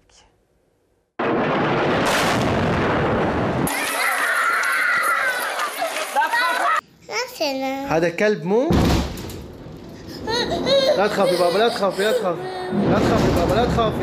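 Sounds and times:
bomb explosion in Idlib Syria: 0:01.2 - 0:04.4, 0:08.7 - 0:10.3, 0:12.7 - 0:14.0
laughter: 0:03.7 - 0:06.8, 0:10.2 - 0:13.5
speech: 0:07.5 - 0:08.9, 0:10.4 - 0:14.0.

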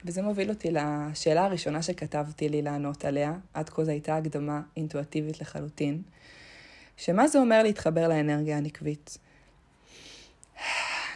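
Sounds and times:
speech: 0:00.0 - 0:06.4, 0:07.0 - 0:09.2
woman taking an airy deep inhale: 0:06.2 - 0:07.0, 0:09.8 - 0:11.1.

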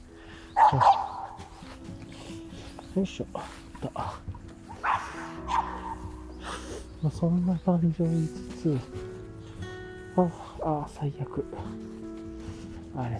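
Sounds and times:
small dog barking while playing with a ball: 0:00.6 - 0:01.4, 0:04.7 - 0:06.1
speech: 0:00.7 - 0:00.9, 0:03.0 - 0:04.3, 0:07.0 - 0:09.1, 0:10.2 - 0:12.1, 0:13.0 - 0:13.1.

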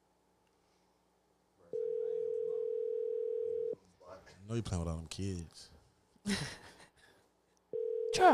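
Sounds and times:
phone call ringing tone: 0:01.7 - 0:03.8, 0:07.8 - 0:08.3
speech: 0:04.5 - 0:05.7, 0:06.3 - 0:06.8.

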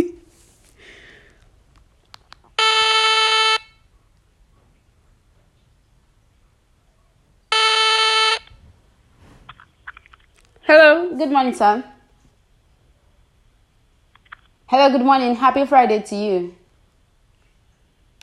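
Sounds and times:
telephone ringback tones on an outgoing call: 0:02.6 - 0:03.7, 0:07.5 - 0:08.5
speech: 0:10.7 - 0:11.9, 0:14.7 - 0:16.6.

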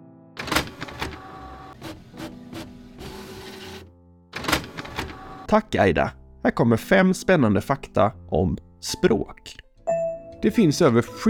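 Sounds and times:
printer printing out pages: 0:00.4 - 0:05.5
speech: 0:05.5 - 0:09.6, 0:10.4 - 0:11.2.

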